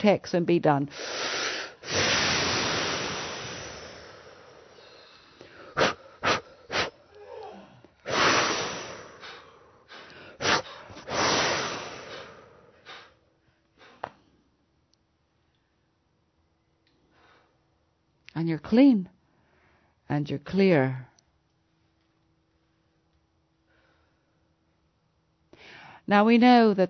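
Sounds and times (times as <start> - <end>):
speech: 0.0 - 2.2, 18.5 - 19.2, 20.1 - 21.1, 26.1 - 26.8
deep breathing in and out during a guided breathing exercise: 0.9 - 14.6, 17.0 - 17.8, 23.6 - 24.6.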